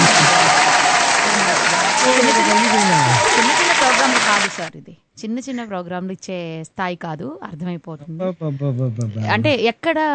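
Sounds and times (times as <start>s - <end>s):
audience applause for a song: 0.0s - 4.7s
speech: 4.3s - 10.1s.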